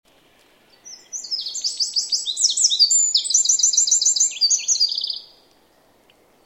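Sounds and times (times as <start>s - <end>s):
Eurasian wren Troglodytes troglodytes singing: 0.6s - 5.4s.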